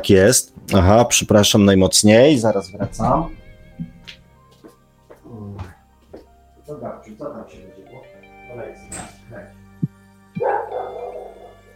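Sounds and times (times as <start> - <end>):
speech: 0.0 - 3.9
mixed-breed dog barking a drawn-out whiny bark: 10.4 - 11.7.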